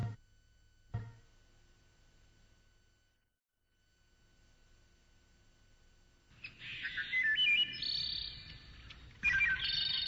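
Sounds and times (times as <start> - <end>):
caged sparrow singing: 6.4 - 10.0.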